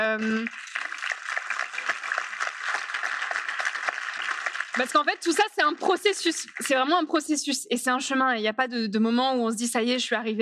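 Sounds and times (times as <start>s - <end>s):
speech: 0.0s - 0.7s, 4.8s - 10.4s
audience applause: 0.0s - 7.0s.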